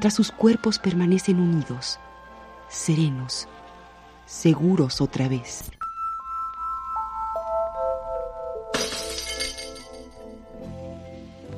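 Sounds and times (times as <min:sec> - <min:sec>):
speech: 0:00.0 - 0:02.1, 0:02.7 - 0:03.6, 0:04.3 - 0:05.8
sustained descending chime tones: 0:05.8 - 0:10.1
glass fragments tinkling: 0:08.7 - 0:10.3
wine glass shattering against the edge of a step: 0:08.7 - 0:10.3.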